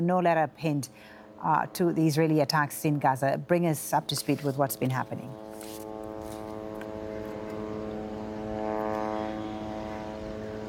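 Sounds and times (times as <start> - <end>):
speech: 0.0 - 5.8
drones buzzing in the sky: 4.8 - 10.6.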